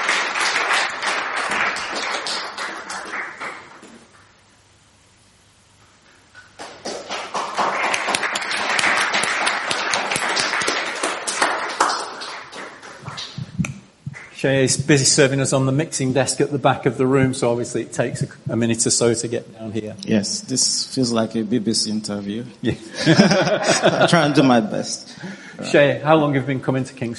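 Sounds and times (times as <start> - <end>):
room full of people clapping: 0.0 - 4.2, 6.6 - 14.3
speech: 14.4 - 27.1
laughter: 22.6 - 25.8.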